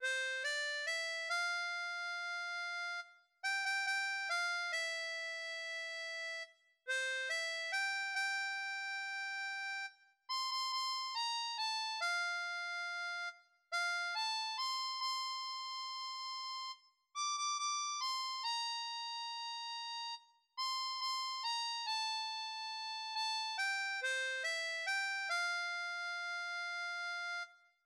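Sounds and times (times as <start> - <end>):
harmonica: 0.0 - 27.5.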